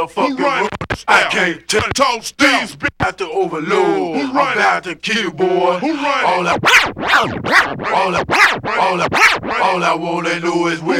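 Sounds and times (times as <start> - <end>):
vinyl disc pushed back and forth under the needle: 0.0 - 3.2, 6.2 - 10.9
speech: 0.0 - 10.9.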